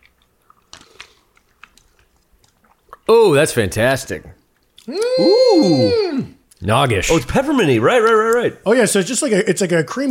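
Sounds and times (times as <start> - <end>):
person sipping an iced cocktail: 0.0 - 3.1
speech: 3.1 - 10.0.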